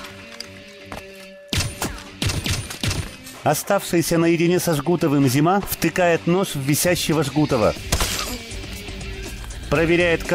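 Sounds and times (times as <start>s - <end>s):
gunshots: 1.5s - 3.3s
speech: 3.4s - 8.0s, 9.7s - 10.3s.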